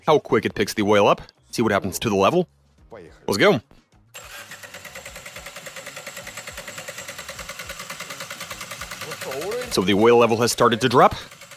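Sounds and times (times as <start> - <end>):
speech: 0.0 - 4.5, 9.2 - 11.4
engine cranking over on the starter: 4.1 - 11.5.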